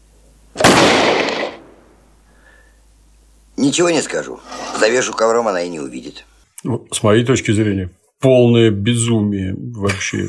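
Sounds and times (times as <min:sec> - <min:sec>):
gunshot fired into the wall of a rented apartment: 0:00.6 - 0:01.9
speech: 0:03.6 - 0:10.2.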